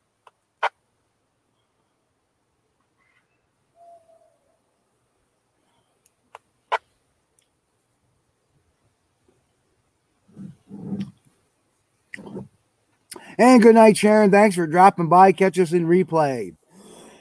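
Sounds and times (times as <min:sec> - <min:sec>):
owl hooting outdoors at night: 0:03.0 - 0:04.6
speech: 0:13.4 - 0:16.6.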